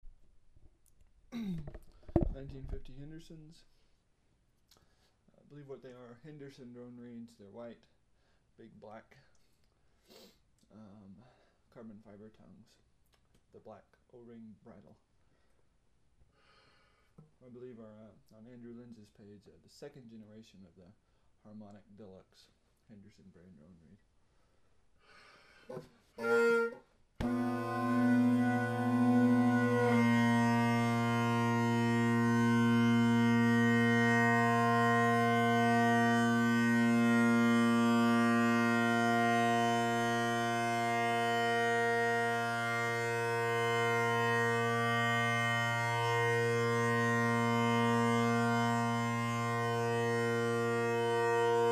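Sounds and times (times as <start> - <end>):
1950s African blackwood bagpipe drone reeds: 25.7 - 51.7.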